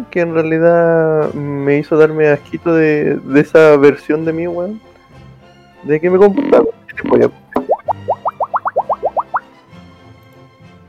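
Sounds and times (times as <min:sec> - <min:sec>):
speech: 0:00.0 - 0:04.9, 0:05.8 - 0:07.4
cartoonish bubble plop sound effects: 0:07.5 - 0:09.4.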